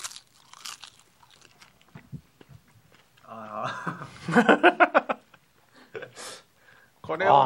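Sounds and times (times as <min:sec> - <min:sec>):
chewing salty wakame seaweed: 0:00.0 - 0:03.3
speech: 0:03.3 - 0:04.8, 0:07.1 - 0:07.4
laughter: 0:03.4 - 0:06.2.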